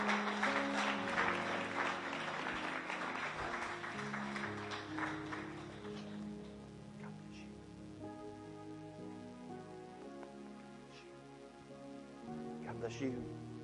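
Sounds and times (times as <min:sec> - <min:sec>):
large church audience applauding and cheering: 0:00.0 - 0:06.6
sustained musical hum: 0:00.0 - 0:13.6.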